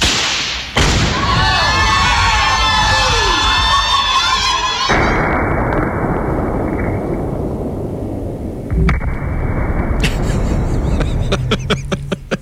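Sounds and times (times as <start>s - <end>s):
explosion of a wedding dress rigged with explosives at a farm party: 0.0s - 3.8s, 4.9s - 12.1s
crowd cheering at a farm party: 0.9s - 5.4s
laughter: 10.0s - 12.4s.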